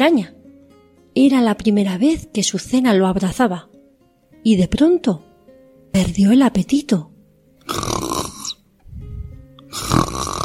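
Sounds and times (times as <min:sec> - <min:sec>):
speech: 0:00.0 - 0:00.4, 0:01.2 - 0:03.7, 0:04.4 - 0:05.3, 0:05.9 - 0:07.1, 0:07.7 - 0:08.0
little sheep snoring in a storybook scene: 0:07.7 - 0:08.6, 0:09.7 - 0:10.4.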